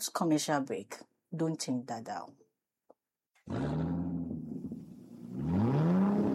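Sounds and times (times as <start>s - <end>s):
speech: 0.0s - 2.4s
car engine revving: 3.5s - 6.3s.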